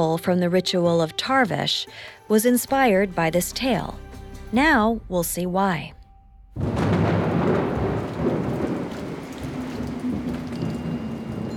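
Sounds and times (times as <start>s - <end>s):
speech: 0.0s - 6.0s
deep thunder rumbling: 4.5s - 11.5s
heavy rain pouring: 6.6s - 11.5s.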